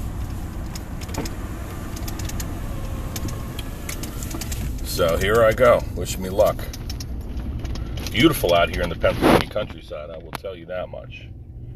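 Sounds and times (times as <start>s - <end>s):
pickup truck engine idling: 0.0s - 8.6s
faint clicks and ticks: 0.2s - 2.5s, 3.1s - 9.0s
speech: 5.0s - 6.8s, 8.1s - 11.4s.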